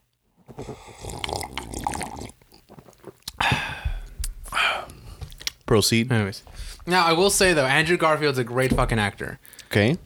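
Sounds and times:
person slurping and sipping coffee: 0.5s - 3.4s
small gulps of coffee: 0.5s - 5.7s, 9.4s - 10.0s
speech: 5.7s - 10.0s.

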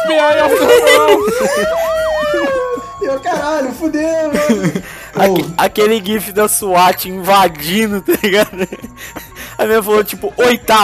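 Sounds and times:
laughter: 0.1s - 5.6s, 8.0s - 9.4s
speech: 0.1s - 10.8s
police siren wailing: 0.6s - 3.3s.

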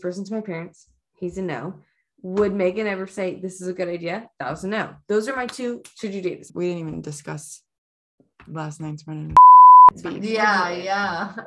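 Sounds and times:
speech: 0.0s - 7.6s, 8.4s - 11.4s
censor bleep: 9.4s - 9.9s.

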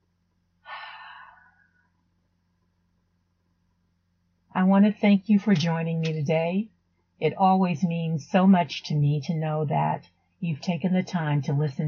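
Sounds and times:
deep breath: 0.6s - 2.0s
speech: 4.6s - 11.8s.

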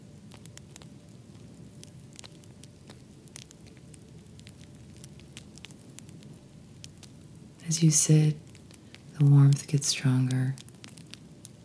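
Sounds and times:
wood fire crackling with pops and snaps: 0.0s - 11.6s
speech: 7.7s - 8.4s, 9.2s - 10.6s.

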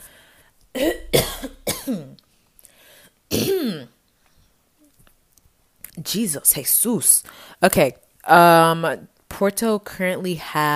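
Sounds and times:
person clearing throat: 0.8s - 2.2s, 3.3s - 3.9s
person coughing: 0.8s - 2.2s, 3.3s - 3.9s
speech: 6.1s - 10.7s.

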